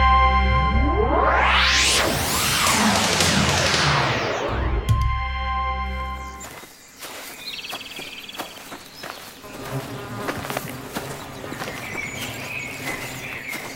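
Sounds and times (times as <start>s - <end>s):
low rumble: 0.0s - 6.4s
birds singing outdoors on a sunny day: 6.2s - 9.6s, 10.8s - 13.7s
steady insect-like buzz: 9.1s - 13.7s.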